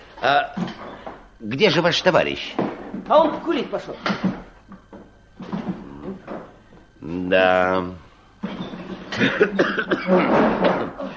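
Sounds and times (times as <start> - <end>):
speech: 0.2 - 4.3, 7.1 - 8.0, 9.2 - 11.0
person coughing: 9.2 - 10.4.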